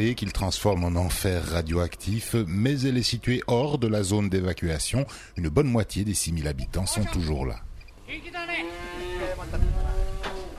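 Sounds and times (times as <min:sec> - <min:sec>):
speech: 0:00.0 - 0:08.4
cattle mooing on a farm in a valley near Fukushima: 0:08.4 - 0:10.5.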